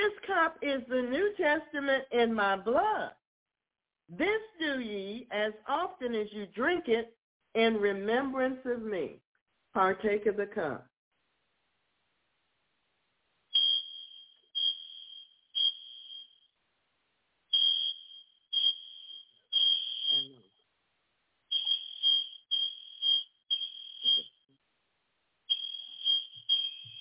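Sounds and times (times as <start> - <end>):
speech: 0.4 - 3.2, 4.1 - 9.2, 9.8 - 10.9
malfunctioning fire alarm beeping during a church communion service: 13.5 - 16.5, 17.5 - 20.4, 21.5 - 24.4, 25.5 - 27.0.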